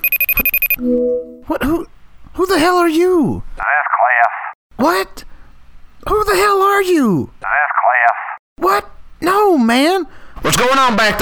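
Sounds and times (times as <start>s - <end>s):
phone ringing with high-pitched electronic beeps: 0.0s - 1.4s
low steady phone tone: 0.0s - 1.5s
speech: 0.8s - 5.3s, 6.0s - 11.1s.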